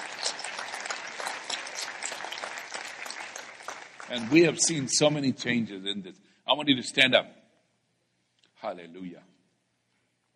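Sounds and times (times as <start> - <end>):
church audience clapping as a clap offering: 0.0 - 5.6
speech: 4.1 - 7.4, 8.7 - 9.4.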